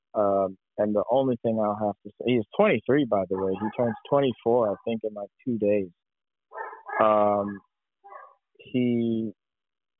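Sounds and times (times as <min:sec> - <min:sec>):
speech: 0:00.4 - 0:07.7, 0:08.6 - 0:09.4
dog barking: 0:03.4 - 0:04.2, 0:06.5 - 0:08.4.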